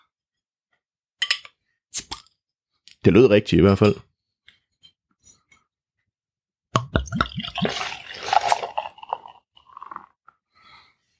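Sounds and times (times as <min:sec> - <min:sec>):
speech: 0:03.0 - 0:04.1
dark beer pouring into a glass: 0:07.0 - 0:10.2.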